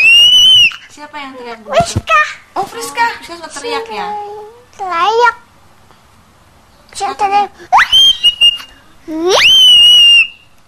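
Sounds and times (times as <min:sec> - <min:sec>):
shrill whistle: 0:00.0 - 0:00.8, 0:07.8 - 0:10.5
speech: 0:01.0 - 0:05.5, 0:07.0 - 0:08.3, 0:09.0 - 0:09.8.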